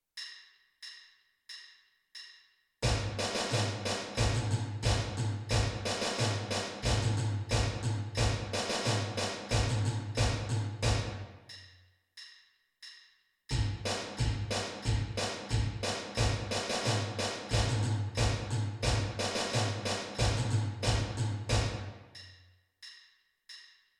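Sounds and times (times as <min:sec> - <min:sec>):
snare drum part: 0:02.8 - 0:11.2, 0:13.5 - 0:21.9.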